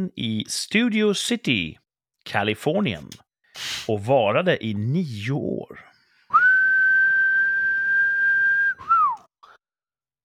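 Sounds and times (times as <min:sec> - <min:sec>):
speech: 0:00.0 - 0:05.9
person whistling: 0:06.3 - 0:09.6.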